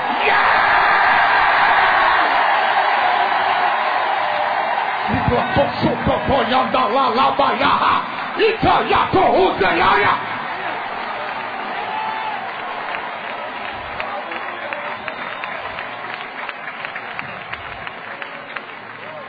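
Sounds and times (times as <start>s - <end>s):
rhythmic yells: 0.0s - 13.2s
large crowd screaming in unison inside a big room: 0.0s - 19.2s.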